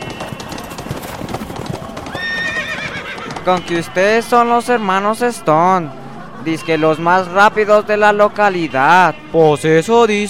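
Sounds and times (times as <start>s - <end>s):
loud high-pitched horse whinny: 0.0s - 3.9s
horses galloping: 0.0s - 5.5s
speech: 3.4s - 10.2s.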